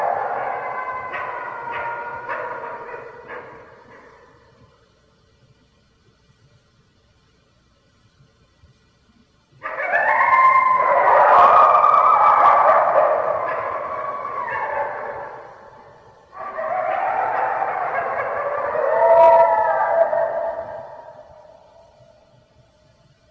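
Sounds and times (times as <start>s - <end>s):
red wolf howling: 0.0s - 4.6s, 9.6s - 22.2s.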